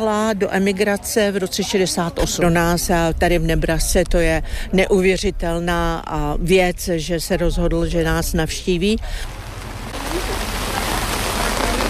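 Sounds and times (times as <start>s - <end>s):
speech: 0.0s - 9.4s
rain pouring on a street pavement in a town in Nebraska: 9.0s - 11.8s.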